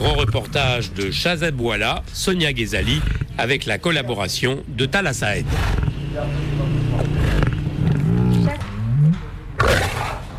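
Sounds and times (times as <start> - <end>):
speech: 0.0 - 7.1
lion roaring in a cage: 2.8 - 3.6, 5.4 - 10.3.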